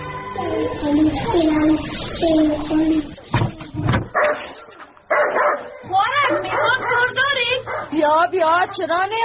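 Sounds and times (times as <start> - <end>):
people talking: 0.4 - 4.8, 5.8 - 9.2
dog barking and yelping: 4.1 - 8.0.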